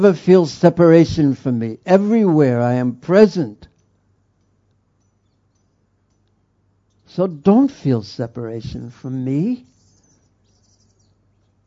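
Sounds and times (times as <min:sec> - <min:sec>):
speech: 0:00.0 - 0:03.7, 0:07.1 - 0:09.7
steady low hum: 0:00.0 - 0:11.6
birds chirping faintly: 0:03.7 - 0:07.6, 0:09.4 - 0:11.6.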